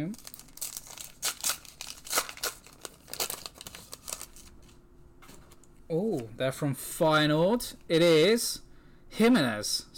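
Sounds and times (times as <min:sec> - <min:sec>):
speech: 0:00.0 - 0:00.3, 0:05.9 - 0:08.6, 0:09.2 - 0:09.9
foil football trading card packs being torn open: 0:00.0 - 0:04.7.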